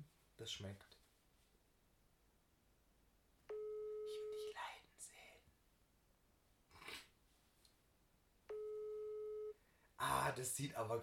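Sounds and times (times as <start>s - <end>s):
speech: 0.4s - 1.0s, 10.3s - 11.0s
telephone ringback tone: 3.5s - 4.5s, 8.5s - 9.6s.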